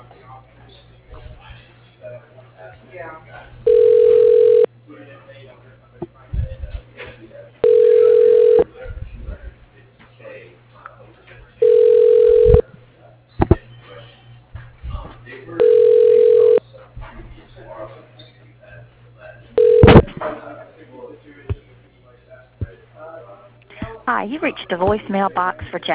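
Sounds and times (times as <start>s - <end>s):
steady low electrical hum: 0.0s - 25.9s
buzzy phone line ring tones: 3.7s - 4.7s, 7.6s - 8.6s, 11.6s - 12.6s, 15.6s - 16.6s, 19.6s - 20.1s
speech: 24.4s - 25.9s.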